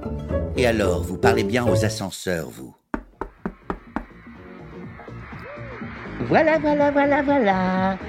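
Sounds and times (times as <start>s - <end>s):
speech: 0.6s - 2.8s, 6.3s - 8.0s
knocking on a door: 3.0s - 4.2s.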